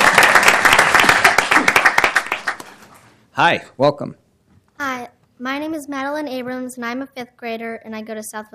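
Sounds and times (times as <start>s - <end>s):
roomful of people clapping in a council chamber: 0.0s - 3.1s
speech: 3.4s - 4.2s, 4.8s - 8.5s.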